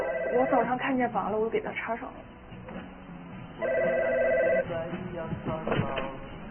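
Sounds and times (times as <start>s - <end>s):
landline telephone ringing: 0.0s - 0.8s, 3.6s - 4.7s
speech: 0.3s - 2.8s, 3.6s - 6.2s.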